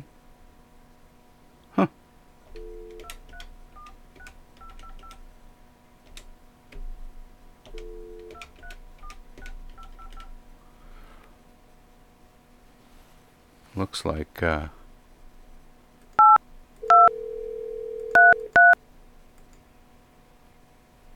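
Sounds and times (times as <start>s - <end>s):
speech: 1.8s - 2.0s, 13.9s - 14.8s
telephone keypad dual-tone dialing beeps: 2.6s - 5.2s, 7.7s - 10.3s, 16.2s - 18.8s.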